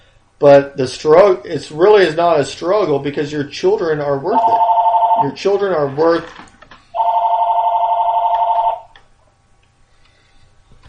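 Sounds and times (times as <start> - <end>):
speech: 0.4 - 6.5
telephone ringing with a trilling electronic bell: 4.3 - 5.7, 6.9 - 9.0.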